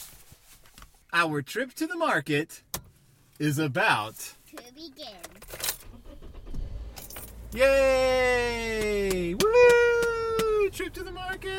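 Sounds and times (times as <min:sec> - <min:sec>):
rustling inside a vehicle: 0:00.0 - 0:01.1
speech: 0:01.1 - 0:02.7, 0:03.4 - 0:05.6, 0:07.5 - 0:09.8
car seatbelts being buckled: 0:05.2 - 0:07.4
metallic clicks and jangling of car seatbelts: 0:06.9 - 0:07.4.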